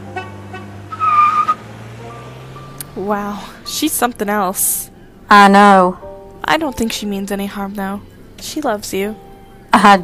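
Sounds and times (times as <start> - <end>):
car tire squeal: 0.0 - 3.0
car engine revving as it pulls off: 0.0 - 4.6
speech: 3.0 - 10.0.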